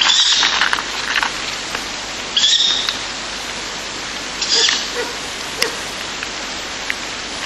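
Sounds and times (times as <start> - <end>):
constant rain-like hiss: 0.0 - 7.4
Ural owl chicks begging screeches while being fed by a parent: 2.4 - 2.9, 4.4 - 5.7.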